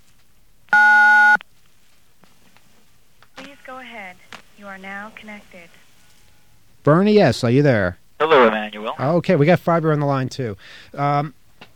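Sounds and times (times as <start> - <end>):
telephone keypad tone from dialing 9: 0.8 - 1.4
speech: 3.9 - 5.8, 6.8 - 11.4.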